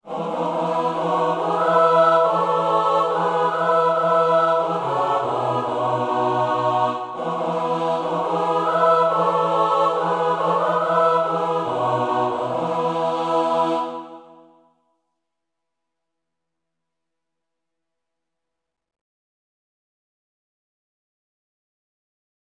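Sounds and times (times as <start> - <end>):
full chorus singing: 0.0 - 14.6.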